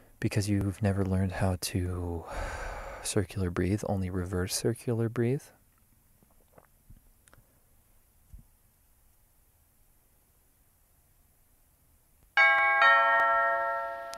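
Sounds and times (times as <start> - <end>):
speech: 0.2 - 5.6
loud two-tone doorbell chime inside a tiny car: 12.4 - 14.1.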